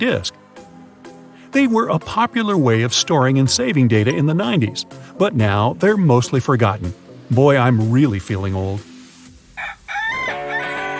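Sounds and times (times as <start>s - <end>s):
speech: 0.0s - 0.4s, 1.5s - 8.9s
rooster crowing: 9.6s - 10.9s.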